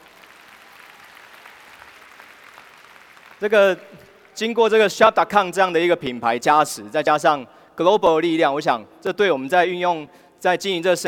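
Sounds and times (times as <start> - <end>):
audience applause: 0.0 - 4.4
speech: 3.4 - 11.0.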